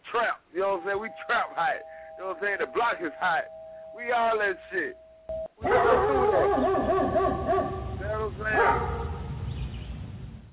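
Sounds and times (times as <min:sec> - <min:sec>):
speech: 0:00.1 - 0:06.9
several dogs barking and yelping: 0:05.6 - 0:09.2.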